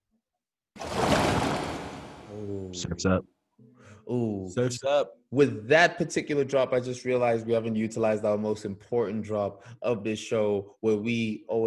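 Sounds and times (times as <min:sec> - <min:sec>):
steady broad rush of surf: 0:00.8 - 0:02.3
loud ocean wave crashing: 0:00.8 - 0:02.4
speech: 0:02.4 - 0:03.3, 0:04.0 - 0:11.6.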